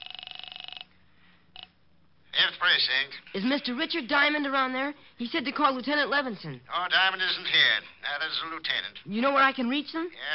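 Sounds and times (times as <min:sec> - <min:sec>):
telephone ringing over the line: 0:00.0 - 0:00.9
speech: 0:02.8 - 0:10.3.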